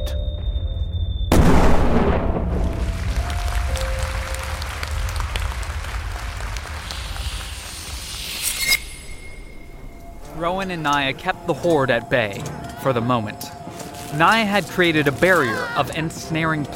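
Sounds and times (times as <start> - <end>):
battle explosions with rumbling and crackling: 0.9 - 8.2
artillery fire: 1.3 - 3.2
speech: 10.4 - 16.7.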